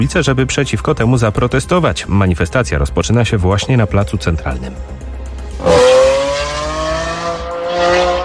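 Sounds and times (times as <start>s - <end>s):
speech: 0.0s - 5.0s
motorcycle engine revving on a city street in Warsaw: 5.5s - 8.2s.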